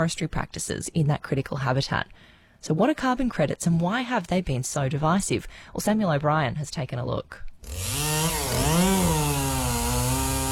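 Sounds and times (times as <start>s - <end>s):
speech: 0.0s - 9.2s
chainsaw running during logging in a forest in New South Wales: 7.6s - 10.5s.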